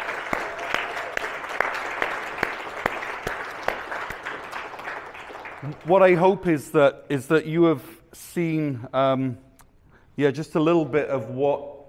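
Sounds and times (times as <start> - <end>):
large crowd applauding: 0.0 - 6.4
speech: 5.6 - 9.5, 10.2 - 11.8.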